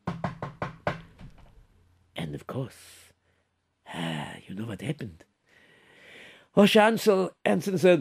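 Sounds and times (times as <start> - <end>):
firm hollow knocks on a door: 0.0 - 1.5
speech: 2.3 - 3.1, 3.9 - 5.3, 6.6 - 7.9.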